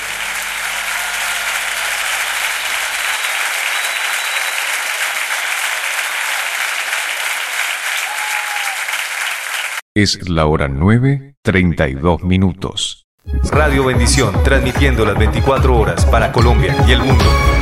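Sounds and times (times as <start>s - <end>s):
large audience applauding loudly: 0.0s - 9.8s
speech: 10.0s - 17.5s.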